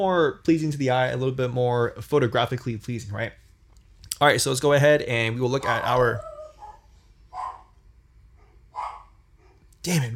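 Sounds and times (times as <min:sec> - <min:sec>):
speech: 0:00.0 - 0:03.4, 0:04.2 - 0:06.3, 0:09.8 - 0:10.1
steady low hum: 0:00.0 - 0:10.1
dog barking at a home: 0:06.6 - 0:07.8, 0:08.4 - 0:09.7.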